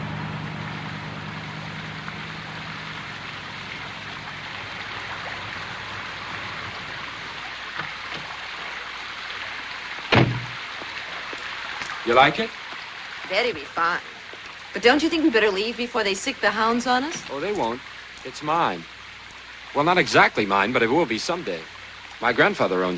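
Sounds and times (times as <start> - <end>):
running water from a broad circular fountain: 0.0 - 22.9
Cadillac convertible car door opening: 10.1 - 10.6
speech: 12.1 - 12.6, 13.3 - 14.1, 14.8 - 19.0, 19.7 - 22.9.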